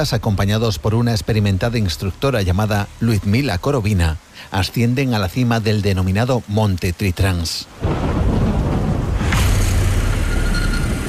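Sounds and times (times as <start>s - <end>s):
speech: 0.0s - 8.1s
heavy thunderstorm roaring: 7.7s - 11.0s
thunderclap: 7.8s - 11.0s.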